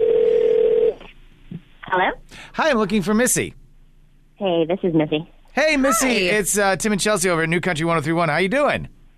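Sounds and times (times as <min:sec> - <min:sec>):
electronic telephone tone over a phone line: 0:00.0 - 0:01.0
speech: 0:02.0 - 0:03.6, 0:04.4 - 0:09.0.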